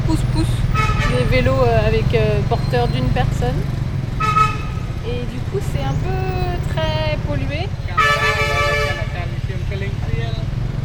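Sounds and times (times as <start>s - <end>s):
dense rumble of engines in city traffic: 0.0s - 10.8s
steady street traffic noise: 0.0s - 10.8s
speech: 0.1s - 4.3s, 5.0s - 8.5s
loud car horn blaring in city traffic: 0.6s - 1.6s, 4.2s - 5.0s, 7.9s - 9.6s
fainter honks in street traffic: 0.6s - 1.7s, 4.2s - 5.0s, 7.8s - 9.5s.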